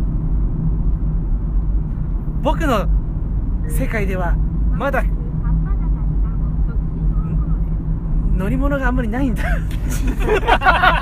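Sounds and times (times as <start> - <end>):
car engine running: 0.0 - 10.9
speech: 2.4 - 3.0, 3.7 - 5.2, 8.4 - 10.9
laughter: 9.4 - 10.9.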